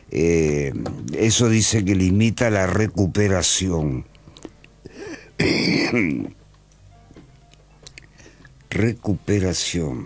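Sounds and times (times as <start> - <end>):
speech: 0.1 - 4.1, 5.4 - 6.4, 8.7 - 10.0
person coughing and clearing throat: 5.0 - 6.4.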